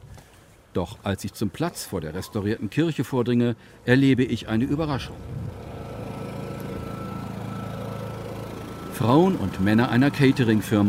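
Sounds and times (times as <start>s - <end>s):
speech: 0.8s - 5.4s, 9.0s - 10.8s
generator humming on a film set: 4.3s - 10.8s.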